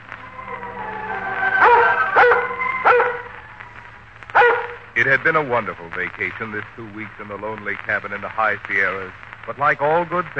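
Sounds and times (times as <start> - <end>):
Scotch collie barking: 1.6 - 3.3, 4.4 - 4.8
speech: 5.0 - 10.3.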